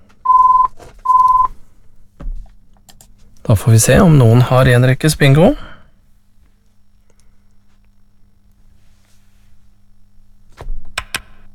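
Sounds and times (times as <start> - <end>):
telephone ringing with electronic tones during a bingo game: 0.2 - 1.5
speech: 3.5 - 5.7.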